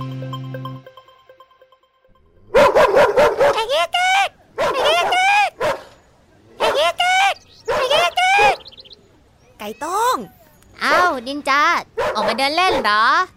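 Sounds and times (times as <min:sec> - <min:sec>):
neighbour's dog barking and yipping: 0:02.5 - 0:03.8, 0:04.5 - 0:06.0, 0:06.6 - 0:07.0, 0:07.6 - 0:08.7, 0:10.2 - 0:11.3, 0:11.9 - 0:13.1.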